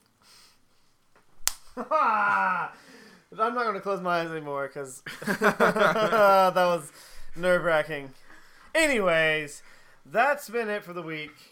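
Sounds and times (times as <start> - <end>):
palms smacking together in a handshake: 1.2 - 1.9, 7.2 - 10.0
speech: 1.8 - 8.2, 8.8 - 11.5
laughter: 5.1 - 6.5.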